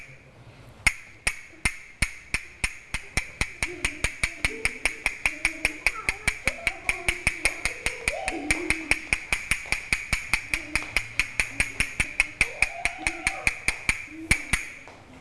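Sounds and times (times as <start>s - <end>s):
woman teacher tapping out a rhythm with wooden-sounding taps: 0.9s - 15.1s
faint voices murmuring: 3.0s - 9.6s, 10.2s - 15.1s.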